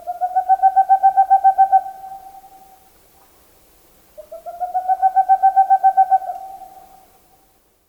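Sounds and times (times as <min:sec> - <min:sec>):
Boreal Owl giving trills of hollow hooting notes: 0:00.0 - 0:02.6, 0:04.2 - 0:07.1.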